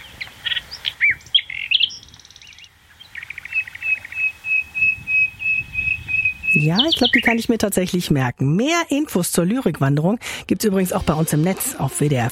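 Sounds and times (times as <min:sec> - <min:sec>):
nightingale singing, played from a sound station: 0:00.0 - 0:07.6
speech: 0:06.6 - 0:12.3.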